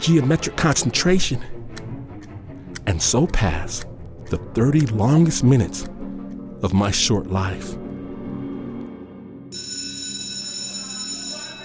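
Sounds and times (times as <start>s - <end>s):
speech: 0.0s - 1.6s, 2.9s - 5.9s, 6.6s - 7.8s
school bell ringing: 9.5s - 11.6s.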